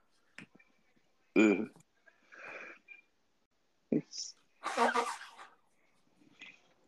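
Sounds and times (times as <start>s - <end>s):
person blowing nose: 4.6s - 5.5s.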